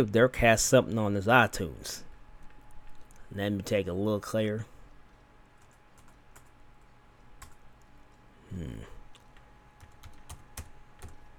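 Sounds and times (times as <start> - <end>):
speech: 0.0 - 2.1, 3.3 - 4.7, 8.5 - 8.9
low steady hum: 0.0 - 11.3
keys clicking on a computer keyboard: 5.6 - 7.9, 9.1 - 11.3.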